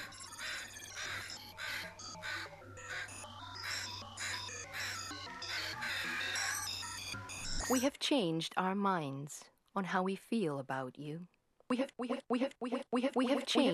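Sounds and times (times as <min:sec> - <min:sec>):
crows cawing: 0:00.0 - 0:06.8
speech: 0:07.7 - 0:13.7.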